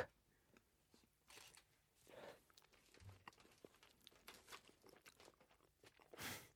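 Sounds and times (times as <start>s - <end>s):
crunching and chewing of chocolate-coated shumai dumplings: 2.3s - 6.2s.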